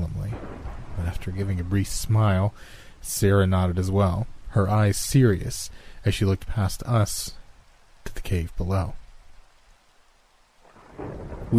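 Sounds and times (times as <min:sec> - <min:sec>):
low rumble of thunder: 0:00.0 - 0:02.5, 0:10.6 - 0:11.5
steady downpour of rain: 0:00.0 - 0:11.5
speech: 0:01.2 - 0:07.4, 0:08.2 - 0:09.0, 0:11.0 - 0:11.5.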